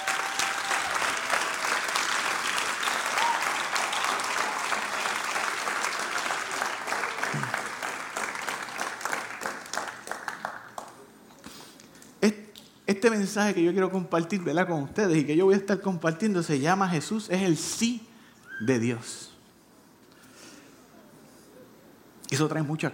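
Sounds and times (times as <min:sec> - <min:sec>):
audience applauding: 0:00.0 - 0:11.1
speech: 0:12.2 - 0:19.3, 0:22.4 - 0:22.9.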